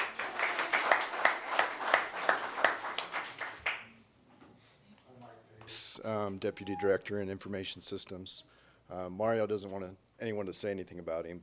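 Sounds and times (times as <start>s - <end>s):
small group clapping in a brisk steady rhythm: 0.0s - 4.0s
speech: 6.0s - 11.4s.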